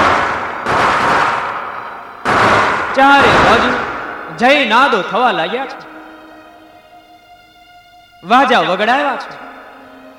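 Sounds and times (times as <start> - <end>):
firecrackers bursting at a midnight festival marking Krishna's birth: 0.0 - 5.1
speech: 3.0 - 3.8, 4.4 - 6.0, 8.2 - 9.6.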